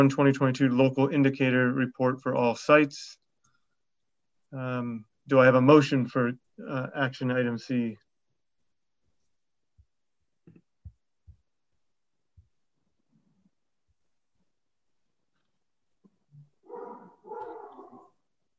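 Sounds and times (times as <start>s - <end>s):
speech: 0.0s - 3.2s, 4.5s - 8.0s
pet dog barking loudly and harshly: 16.6s - 18.2s.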